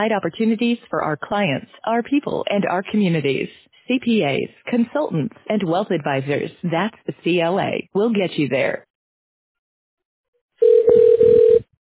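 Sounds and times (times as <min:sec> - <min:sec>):
speech: 0:00.0 - 0:08.9
telephone ringing tone as a call is put through to reception: 0:10.6 - 0:11.7.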